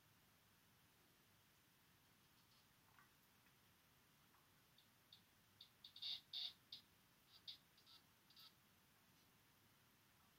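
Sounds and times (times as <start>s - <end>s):
male Sabana Surinam toad Pipa parva ticking and buzzing: 4.8s - 8.6s.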